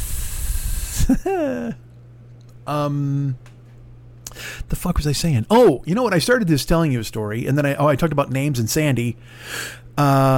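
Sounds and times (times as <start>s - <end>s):
person imitating a snake's hiss: 0.0s - 1.2s
speech: 1.1s - 1.9s, 2.7s - 3.5s, 4.4s - 10.3s
person making short drawn-out voiced sounds: 5.5s - 5.9s.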